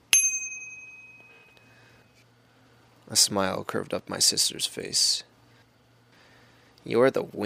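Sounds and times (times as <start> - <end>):
small bicycle bell ringing: 0.1 - 1.8
speech: 3.1 - 5.3, 6.8 - 7.4.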